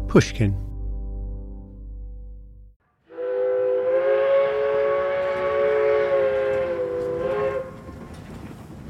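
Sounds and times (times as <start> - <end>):
speech: 0.1 - 0.7
steam train whistle blast: 3.1 - 7.9
steam train rumbling near Paris: 3.2 - 8.8.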